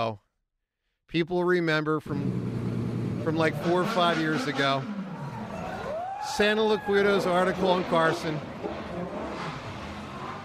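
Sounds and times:
speech: 0.0 - 0.2, 1.1 - 2.5, 3.2 - 4.9, 6.2 - 9.1
car engine revving: 2.1 - 10.4.

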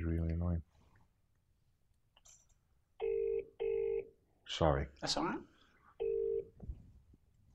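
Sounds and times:
mobile phone ringing with two electronic tones: 3.0 - 4.1, 6.0 - 6.5
speech: 4.6 - 5.5.

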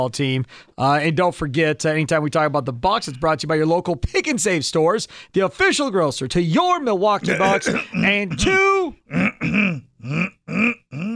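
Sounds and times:
speech: 0.0 - 11.1
man choking and gagging with something stuck in his throat: 7.2 - 11.1.

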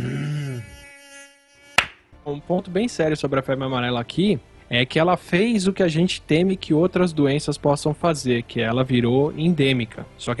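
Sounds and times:
mosquito whine: 0.0 - 1.8
sharp slap-like smack: 1.8 - 2.0
speech: 2.3 - 10.3.

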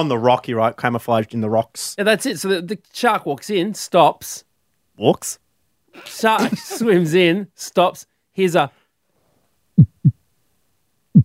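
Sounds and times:
speech: 0.0 - 5.4, 6.0 - 8.8
laughter: 6.0 - 7.0
man imitating a heartbeat with his throat pressed over a microphone: 9.8 - 10.2.

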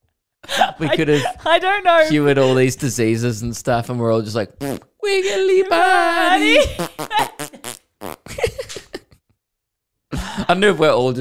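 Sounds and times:
speech: 0.8 - 7.8, 10.5 - 11.2
fart sound effects played from a phone: 4.6 - 4.9, 6.8 - 8.3.

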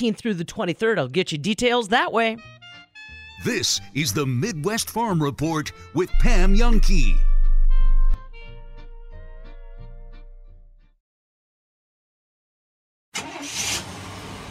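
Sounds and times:
speech: 0.0 - 2.6, 3.4 - 7.3
bright musical notes: 6.1 - 10.3.

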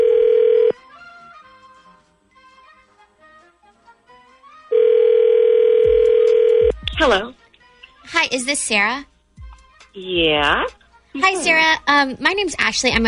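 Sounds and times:
steady telephone tone on a line as a call is placed: 0.0 - 0.8, 4.7 - 6.7
speech: 7.0 - 7.4, 8.1 - 9.1, 10.0 - 13.0.

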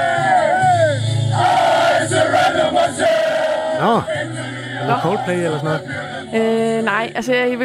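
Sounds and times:
group of men singing along after a match: 0.0 - 6.7
speech: 3.8 - 7.6.

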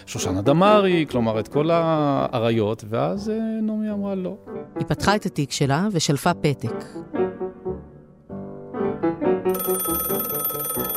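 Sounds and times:
speech: 0.1 - 7.3
landline telephone rattling bell ringing: 9.5 - 10.9.

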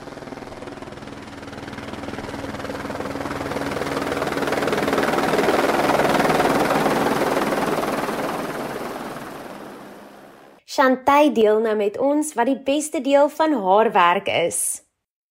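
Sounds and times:
helicopter rotor thrum: 0.0 - 10.6
speech: 10.8 - 14.8.

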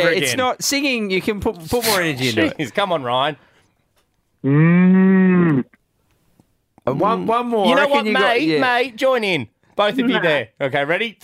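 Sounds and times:
speech: 0.0 - 3.5, 4.4 - 5.8, 6.9 - 11.2
caller's human voice imitating a cow moo: 4.4 - 5.7.

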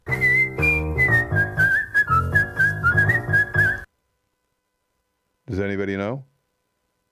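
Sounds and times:
person whistling a bright bouncy song melody: 0.0 - 3.9
steady chordal backing music: 0.0 - 3.9
speech: 5.5 - 6.3.

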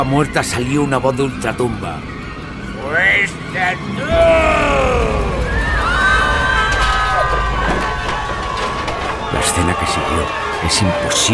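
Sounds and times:
speech: 0.0 - 2.2, 2.9 - 5.3, 9.4 - 11.3
dense crowd of guests screaming and shouting: 4.0 - 11.3
thumps and hurried movement: 5.7 - 11.3.

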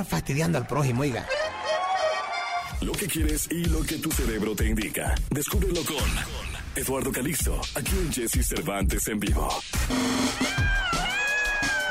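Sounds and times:
speech: 0.0 - 1.4, 2.8 - 10.7
many voices screaming and shouting in greeting to a guest on a morning radio show: 0.0 - 2.7, 10.0 - 11.8.

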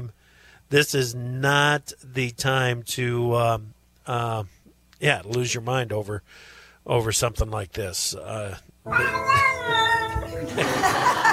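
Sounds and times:
speech: 0.7 - 9.8
cat meowing: 8.9 - 10.3
laughter: 10.4 - 11.3.

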